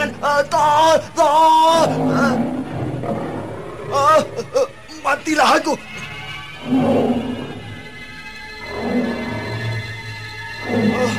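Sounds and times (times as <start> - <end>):
speech: 0.0 - 3.2, 3.9 - 5.9, 6.6 - 7.3
tiger roaring as it approaches: 1.6 - 4.6, 6.2 - 7.9, 8.6 - 9.9, 10.6 - 11.1.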